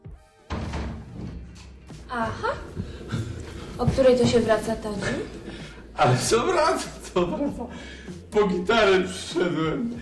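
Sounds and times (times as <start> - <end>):
house door shutting with a heavy thud: 0.5 - 1.8
house door being pushed open: 0.5 - 2.1
brief rumbling shuffling noise of door settling: 1.2 - 6.4
speech: 2.1 - 3.2, 3.8 - 5.4, 6.0 - 10.0.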